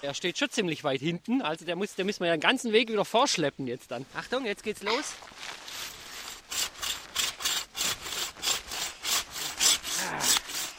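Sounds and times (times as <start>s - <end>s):
speech: 0.0s - 5.6s
hand saw cutting through the trunk of a tall slim tree: 5.6s - 10.7s.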